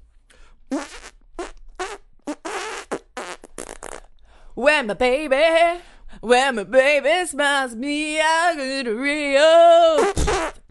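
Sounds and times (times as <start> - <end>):
fart noises blown by mouth: 0.7 - 4.1, 10.0 - 10.6
speech: 4.6 - 10.6.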